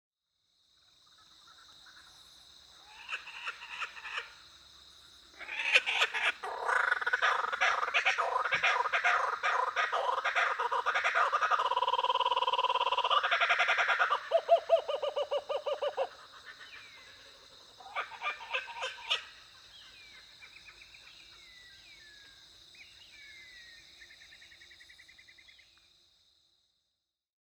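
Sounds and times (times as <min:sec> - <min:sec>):
Dacelo novaeguineae laughing kookaburra calling: 0:02.9 - 0:04.3, 0:05.4 - 0:19.8.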